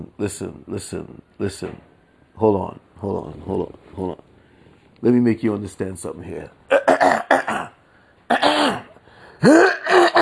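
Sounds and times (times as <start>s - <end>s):
speech: 0.0s - 4.2s, 5.0s - 7.3s
throat clearing: 6.7s - 10.1s.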